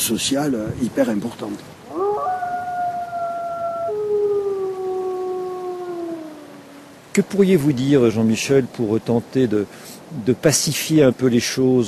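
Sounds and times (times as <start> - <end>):
speech: 0.1 - 2.0, 7.2 - 11.8
wolves howling: 1.9 - 7.0.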